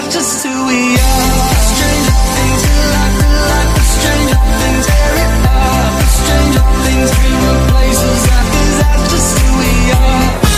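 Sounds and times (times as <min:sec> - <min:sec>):
sad electronic music ringtone: 0:00.0 - 0:10.4.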